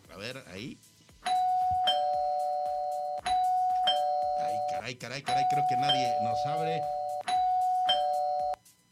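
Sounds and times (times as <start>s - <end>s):
speech: 0.2s - 1.4s, 4.9s - 7.0s
electronic doorbell ringing: 1.2s - 8.6s.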